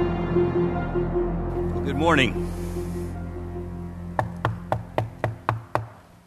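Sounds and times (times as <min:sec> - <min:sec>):
low steady hum: 0:00.1 - 0:06.2
speech: 0:01.9 - 0:02.6
knocking on a front door: 0:04.2 - 0:06.0.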